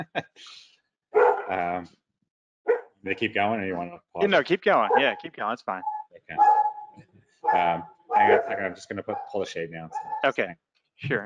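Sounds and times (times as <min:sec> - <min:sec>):
speech: 0:00.0 - 0:00.7, 0:01.5 - 0:02.0, 0:02.6 - 0:11.2
dog barking: 0:01.2 - 0:01.8, 0:04.8 - 0:10.3
voice sounds: 0:01.5 - 0:01.9, 0:03.1 - 0:06.5, 0:07.5 - 0:11.2.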